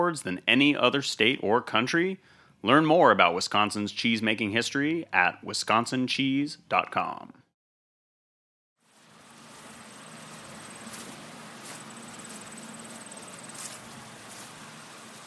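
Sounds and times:
speech: 0.1s - 7.4s
bees buzzing in an apple orchard in autumn: 8.9s - 15.2s
faint high insect-like whine: 8.9s - 15.2s
crisp breeze outdoors: 9.0s - 15.2s.

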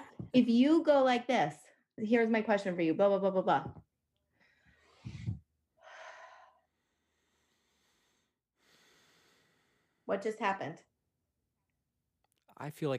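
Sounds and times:
speech: 0.3s - 3.8s, 10.1s - 10.9s, 12.6s - 12.9s
slow deep breath in through the nose and long airy exhale: 4.3s - 10.1s.

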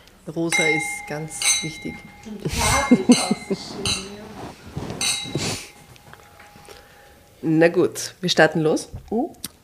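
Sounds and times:
speech: 0.2s - 5.4s, 7.4s - 9.5s
glasses clinking in a toast: 0.4s - 7.0s
overlapping voices: 1.8s - 6.1s
brief laughter: 2.3s - 4.6s.

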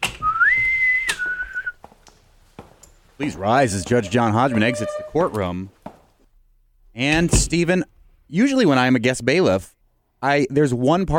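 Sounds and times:
bosun's whistle: 0.2s - 1.8s
speech: 3.2s - 5.8s, 7.0s - 11.1s.

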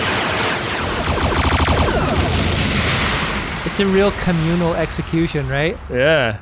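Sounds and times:
sci-fi pistol energy blasts in a sustained barrage: 0.0s - 3.8s
speech: 3.8s - 6.4s.

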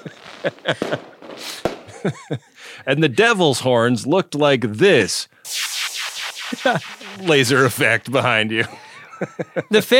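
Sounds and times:
laughter: 0.0s - 1.1s, 1.9s - 2.6s, 8.6s - 9.9s
fireworks from an on-screen video effect: 0.0s - 2.0s, 5.5s - 9.1s
speech: 0.0s - 5.6s, 6.5s - 9.9s.

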